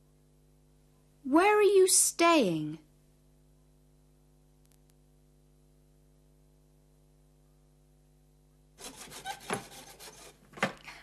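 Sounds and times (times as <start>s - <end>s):
speech: 1.3s - 2.8s
continuous scraping rasping workshop sound: 8.8s - 10.4s.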